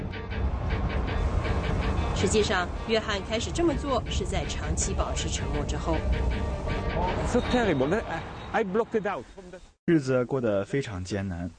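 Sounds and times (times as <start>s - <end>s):
low rumble of a subway train in motion: 0.0s - 9.1s
speech: 2.2s - 11.5s.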